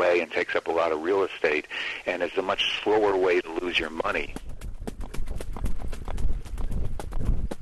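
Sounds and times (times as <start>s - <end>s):
speech: 0.0s - 4.5s
harness racing horse hooves clip-clopping at a trot pulling a sulky: 2.6s - 7.6s.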